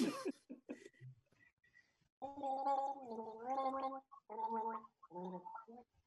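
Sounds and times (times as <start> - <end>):
person gargling a tune: 2.2 - 5.8.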